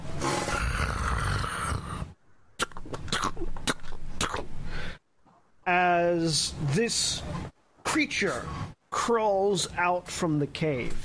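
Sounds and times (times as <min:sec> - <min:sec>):
werewolf roaring: 0:00.2 - 0:02.2
speech: 0:05.7 - 0:11.0.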